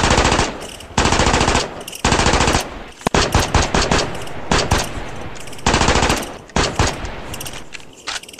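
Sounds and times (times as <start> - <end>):
rapid automatic gunfire in a video game: 0.0 - 7.8.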